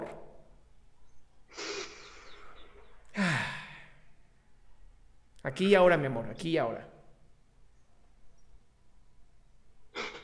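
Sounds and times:
deep breath in and out: 0:01.5 - 0:04.2
speech: 0:05.5 - 0:06.9.

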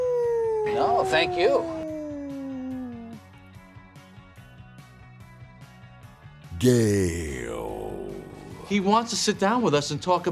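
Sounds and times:
person imitating a wolf howl: 0:00.0 - 0:03.2, 0:06.5 - 0:08.7
speech: 0:00.6 - 0:01.8, 0:06.6 - 0:07.3, 0:08.7 - 0:10.3.

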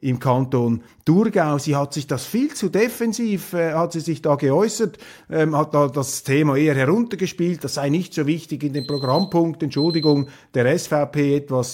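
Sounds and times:
speech: 0:00.0 - 0:11.7
timer alarm with short high electronic beeps: 0:08.8 - 0:10.4.

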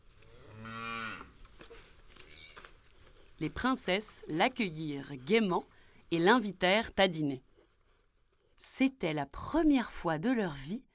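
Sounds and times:
shuffling farmyard noise: 0:00.0 - 0:08.0
cow mooing: 0:00.3 - 0:01.3
speech: 0:03.4 - 0:07.5, 0:08.6 - 0:10.9.

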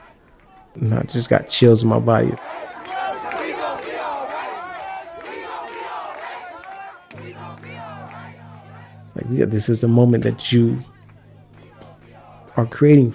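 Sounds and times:
large protest crowd chanting in the street: 0:00.0 - 0:13.1
speech: 0:00.8 - 0:02.6, 0:09.3 - 0:11.0, 0:12.6 - 0:13.1
people shouting: 0:02.4 - 0:09.6, 0:11.1 - 0:12.7.

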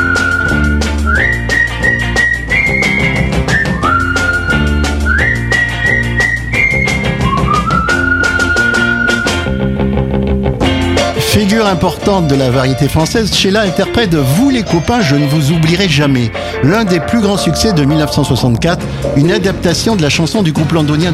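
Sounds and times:
bright whistled melody in a pop song: 0:00.0 - 0:09.7, 0:11.4 - 0:18.4
full pop band backing with steady drums and bass: 0:00.0 - 0:21.1
speech: 0:11.6 - 0:21.1.

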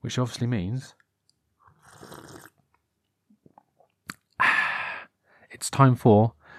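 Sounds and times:
speech: 0:00.0 - 0:01.0, 0:05.6 - 0:06.4
person slurping a hot drink: 0:01.7 - 0:02.6.

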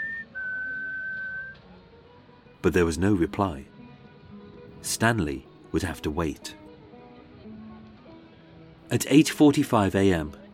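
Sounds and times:
person whistling a sustained note up to a window: 0:00.0 - 0:01.6
speech: 0:02.6 - 0:03.7, 0:04.8 - 0:06.6, 0:08.9 - 0:10.4.

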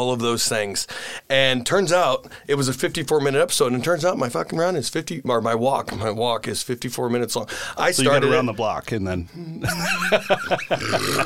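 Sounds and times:
speech: 0:00.0 - 0:11.2
grunting laugh-like bursts: 0:09.5 - 0:11.2
short throaty burps: 0:10.7 - 0:11.2.

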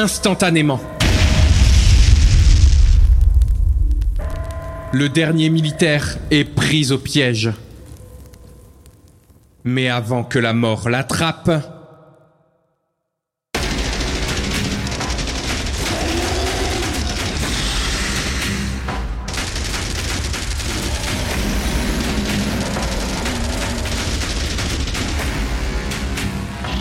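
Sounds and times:
speech: 0:00.0 - 0:01.0, 0:04.9 - 0:07.6, 0:09.6 - 0:11.7
heavy gunfire from a battalion in a trench battle: 0:01.0 - 0:03.1, 0:13.6 - 0:18.6, 0:19.2 - 0:26.5
booming artillery in a trench battle: 0:01.0 - 0:04.3, 0:13.6 - 0:26.2.

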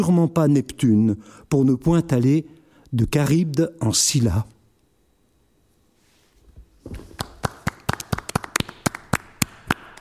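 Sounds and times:
speech: 0:00.0 - 0:04.6, 0:06.8 - 0:07.1
scattered applause from a small group: 0:07.0 - 0:09.9.

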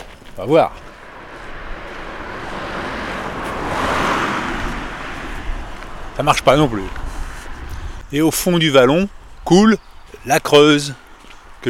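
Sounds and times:
car passing along a road beside a hillside near Felletin in Limousin France: 0:00.0 - 0:08.2
speech: 0:00.4 - 0:00.8, 0:06.2 - 0:07.0, 0:08.1 - 0:11.0
outdoor rushing noise: 0:00.4 - 0:08.7.

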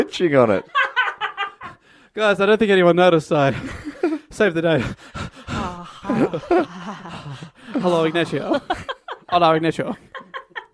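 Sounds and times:
speech: 0:00.1 - 0:00.8, 0:02.2 - 0:05.2, 0:06.0 - 0:10.1
laughter: 0:00.5 - 0:01.8, 0:03.5 - 0:10.7
voice mimicking heavy breathing with moan-like groans: 0:04.8 - 0:07.8.

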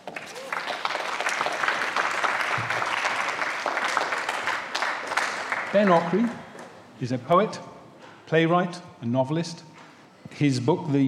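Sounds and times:
audience applause: 0:00.0 - 0:06.8
speech: 0:05.7 - 0:06.4, 0:07.0 - 0:07.7, 0:08.3 - 0:09.7, 0:10.3 - 0:11.0.

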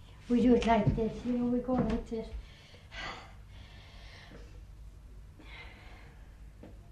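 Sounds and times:
low steady hum: 0:00.0 - 0:06.9
speech: 0:00.3 - 0:02.4
slow deep breaths during a Tai Chi breathing exercise: 0:02.4 - 0:06.9.

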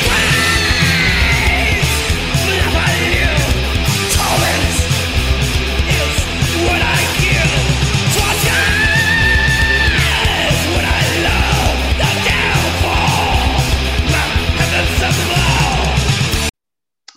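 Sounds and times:
harsh screamed vocals: 0:00.0 - 0:04.9, 0:08.1 - 0:16.1
loud dense heavy music with pounding drums: 0:00.0 - 0:16.5.

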